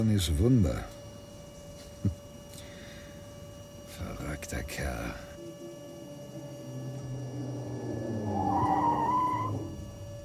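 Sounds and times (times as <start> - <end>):
speech: 0.0 - 1.0, 4.4 - 5.3
low car engine rumble: 3.9 - 10.2
car tires squealing as a car skids: 7.0 - 10.0.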